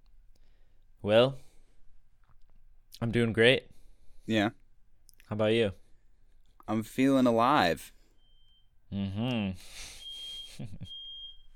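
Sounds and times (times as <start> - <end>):
speech: 1.0 - 1.4, 3.0 - 3.7, 4.3 - 4.6, 5.3 - 5.8, 6.7 - 8.0, 8.9 - 10.0, 10.6 - 11.0
steady high-pitched smoke alarm tone: 8.0 - 8.8, 9.9 - 11.5.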